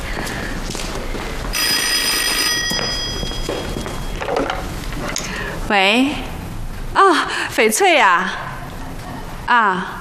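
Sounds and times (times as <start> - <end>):
dull room hum: 0.0 - 10.0
telephone ringing with a trilling electronic bell: 1.6 - 4.7
speech: 5.7 - 6.3, 6.9 - 8.4, 9.5 - 10.0.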